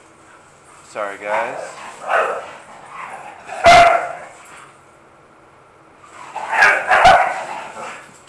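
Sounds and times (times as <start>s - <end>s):
speech: 0.9s - 2.5s
dogs barking and yipping while playing: 1.2s - 4.5s, 6.1s - 8.1s.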